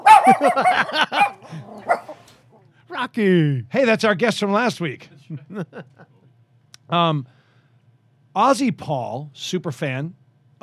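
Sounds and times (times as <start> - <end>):
laughter: 0.0 - 2.3, 5.3 - 6.3
dog barking and whining: 0.0 - 2.6
speech: 0.3 - 1.1, 3.1 - 6.1, 6.9 - 7.4, 8.4 - 10.6.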